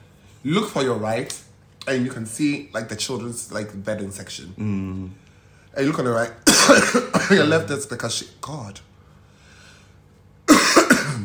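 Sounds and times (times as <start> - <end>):
speech: 0.4 - 8.9
person coughing: 6.4 - 7.5, 10.5 - 11.2
throat clearing: 10.5 - 11.2.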